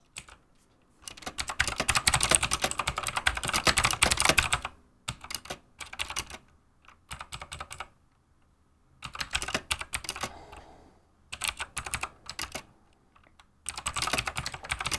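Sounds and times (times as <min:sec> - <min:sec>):
keyboard typing: 0:01.0 - 0:06.4, 0:09.0 - 0:10.4, 0:11.3 - 0:12.7, 0:13.7 - 0:14.9.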